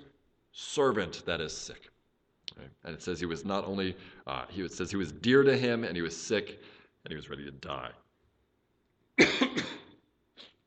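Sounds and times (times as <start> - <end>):
speech: 0.6 - 2.0, 2.6 - 8.0
person coughing while teaching a Bible passage: 9.2 - 10.6.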